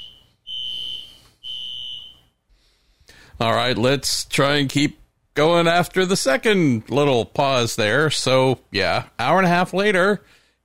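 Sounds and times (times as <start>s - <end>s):
fire alarm electronic beeps: 0.0s - 2.4s
speech: 3.4s - 10.6s.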